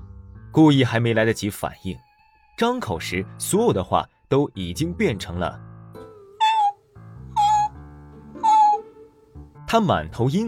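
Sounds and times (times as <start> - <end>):
speech: 0.6 - 5.7, 9.7 - 10.4
black cat meowing: 6.4 - 6.8, 7.4 - 7.8, 8.4 - 8.9.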